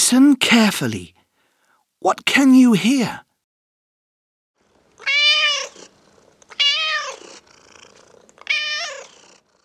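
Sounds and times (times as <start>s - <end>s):
speech: 0.1s - 1.2s, 2.0s - 3.3s
cat meowing loud and drawn out: 5.0s - 5.9s, 6.5s - 7.4s, 8.4s - 9.2s.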